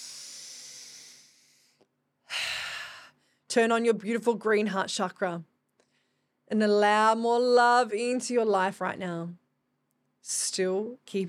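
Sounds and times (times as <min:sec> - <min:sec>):
deep breath in during a guided breathing exercise: 0:00.0 - 0:03.4
speech: 0:03.6 - 0:05.5, 0:06.5 - 0:09.4, 0:10.2 - 0:11.2.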